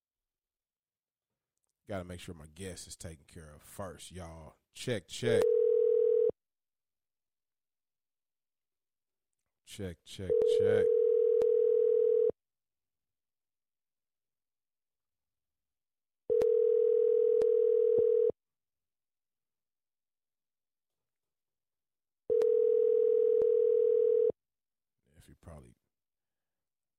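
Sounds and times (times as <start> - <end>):
speech: 1.9 - 5.6, 9.7 - 11.0
outgoing phone call ringback tones: 5.4 - 6.3, 10.3 - 12.3, 16.3 - 18.4, 22.3 - 24.3.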